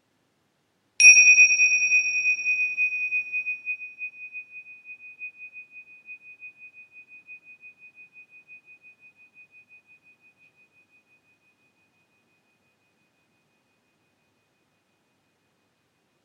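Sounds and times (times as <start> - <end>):
meditation bell ringing: 1.0 - 4.0.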